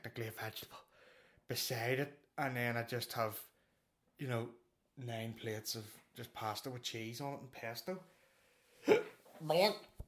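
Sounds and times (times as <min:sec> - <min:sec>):
speech: 0:00.2 - 0:00.9, 0:01.5 - 0:03.5, 0:04.2 - 0:08.1, 0:08.8 - 0:09.9
person hiccuping: 0:08.8 - 0:09.2.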